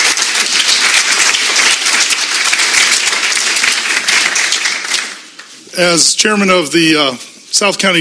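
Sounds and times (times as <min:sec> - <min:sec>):
audience applauding at an evening chamber of commerce event: 0:00.0 - 0:05.4
speech: 0:05.8 - 0:07.9.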